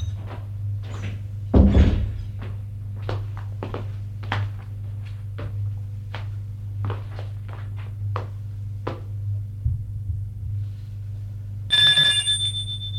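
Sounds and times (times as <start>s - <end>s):
footsteps: 0.2s - 9.1s
doorbell ringing: 11.7s - 12.9s.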